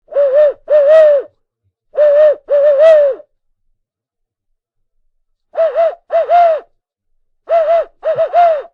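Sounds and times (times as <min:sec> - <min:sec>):
owl call device: 0:00.1 - 0:01.4, 0:02.0 - 0:03.3, 0:05.5 - 0:06.8, 0:07.5 - 0:08.7.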